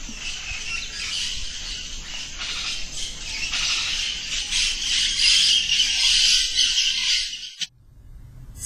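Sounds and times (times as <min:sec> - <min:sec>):
forest insects buzzing: 0:00.0 - 0:07.2
forest birds chirping: 0:00.0 - 0:07.7
faint low rumble: 0:07.7 - 0:08.6.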